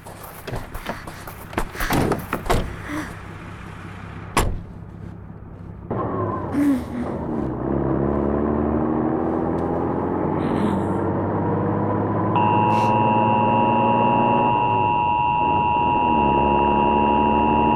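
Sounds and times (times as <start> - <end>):
clunks: 0.0 - 7.7
truck engine starting, revving and pulling away: 0.0 - 17.7
sharp door slam: 1.6 - 2.9, 4.4 - 4.7.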